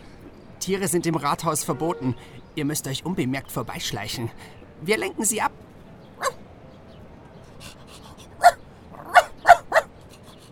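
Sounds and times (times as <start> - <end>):
speech: 0.6 - 5.5
dog barking: 6.2 - 6.4, 8.4 - 9.9.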